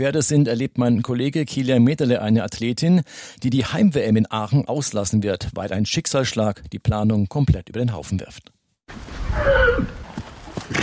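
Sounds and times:
speech: 0.0 - 10.0
foal whinnying on a paddock: 9.2 - 10.0.

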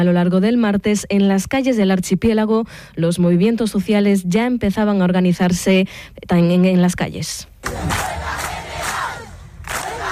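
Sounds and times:
speech: 0.0 - 8.1
large crowd chanting at a housing protest assembly: 7.6 - 10.1.

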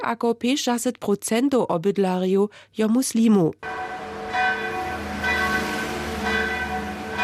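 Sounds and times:
speech: 0.0 - 4.0
church bells ringing: 3.6 - 7.2.

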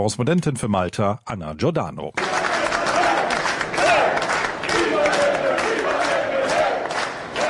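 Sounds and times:
speech: 0.0 - 2.5
large crowd of party delegates cheering and shouting at a vote-counting centre in Malta: 2.2 - 7.4
people clapping: 2.2 - 7.4.

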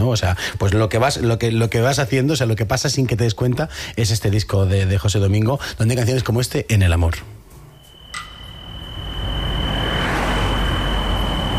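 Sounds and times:
speech: 0.0 - 7.4
thin high insect trill: 7.6 - 11.5
car engine and road rumble approaching outdoors: 8.6 - 11.5.

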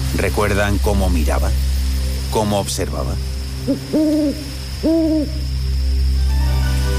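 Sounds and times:
quiet hum: 0.0 - 6.9
speech: 0.2 - 5.5
owl hooting in a forest: 3.6 - 5.7.

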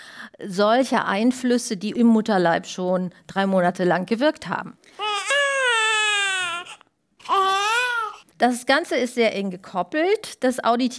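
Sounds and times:
speech: 0.3 - 5.0, 8.4 - 10.9
infant crying: 5.0 - 8.2.

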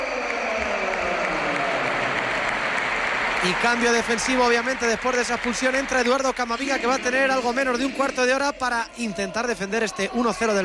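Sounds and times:
large stadium crowd ovation with applause and cheering: 0.0 - 8.5
speech: 3.4 - 10.6.

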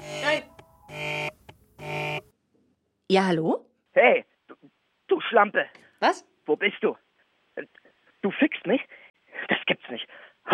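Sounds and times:
telephone ringing in buzzy electronic bursts: 0.0 - 2.3
speech: 3.1 - 4.3, 5.2 - 7.0, 7.6 - 10.5.

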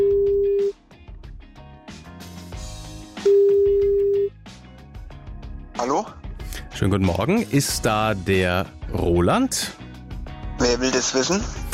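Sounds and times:
telephone dial or ringback tones while a call is placed: 0.0 - 0.8, 3.3 - 4.3
music: 0.0 - 11.7
speech: 6.8 - 9.8, 10.7 - 11.6.

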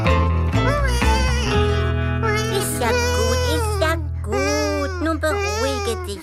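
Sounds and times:
baby crying after waking up: 0.6 - 6.2
steady low tone: 1.8 - 6.2.

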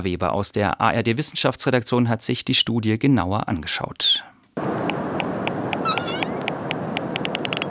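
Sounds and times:
speech: 0.0 - 4.3
dense underwater hiss: 0.6 - 7.3
pilot whale clicks underwater: 4.9 - 7.6
pilot whale whistles and squeaks underwater: 5.8 - 6.5.

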